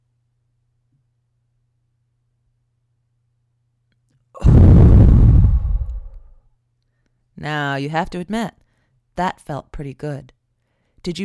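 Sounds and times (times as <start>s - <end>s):
deep belly breath exhaled: 4.4s - 6.4s
speech: 7.4s - 8.6s, 9.2s - 10.4s, 11.0s - 11.2s.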